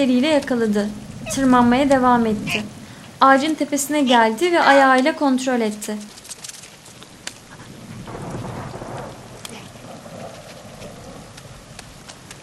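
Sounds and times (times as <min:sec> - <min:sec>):
lightning strike with sharp crackling impacts: 0:00.0 - 0:04.4, 0:07.1 - 0:12.4
low thunder rumble: 0:00.0 - 0:05.5, 0:07.1 - 0:12.4
speech: 0:00.0 - 0:06.2
steady rain pattering: 0:00.0 - 0:12.4.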